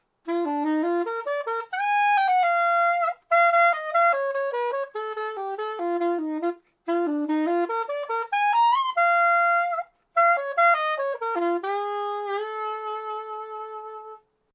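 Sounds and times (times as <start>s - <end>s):
YSS62 soprano saxophone: 0.2s - 14.4s.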